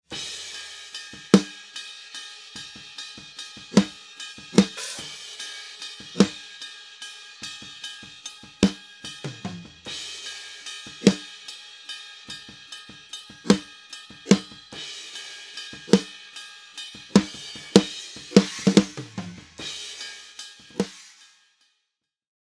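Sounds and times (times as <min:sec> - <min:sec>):
snare drum: 0:01.2 - 0:01.6, 0:03.6 - 0:05.2, 0:06.0 - 0:06.4, 0:08.6 - 0:09.9, 0:10.9 - 0:11.3, 0:13.5 - 0:13.7, 0:14.3 - 0:14.6, 0:15.8 - 0:16.1, 0:17.0 - 0:21.2.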